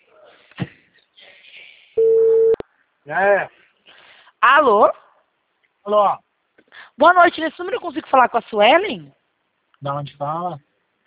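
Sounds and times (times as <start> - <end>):
faint noise: 0.0 - 11.0
telephone line tone while placing a call: 2.0 - 2.6
speech: 3.1 - 3.6, 4.4 - 5.0, 5.8 - 6.2, 7.0 - 9.2, 9.8 - 10.7.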